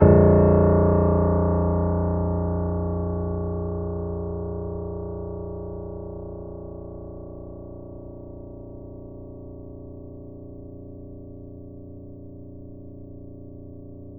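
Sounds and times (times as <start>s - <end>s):
grand piano note A sharp played mezzo forte: 0.0s - 4.8s.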